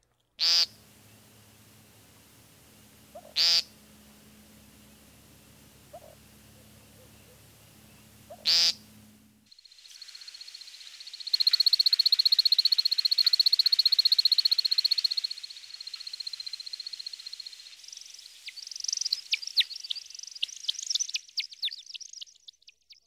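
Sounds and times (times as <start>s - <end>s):
American woodcock buzzy nasal peenting calls: 0.4s - 9.1s, 9.8s - 22.7s
American woodcock high twittering flight chips from wing feathers: 0.4s - 22.4s
low rumble: 0.7s - 9.4s.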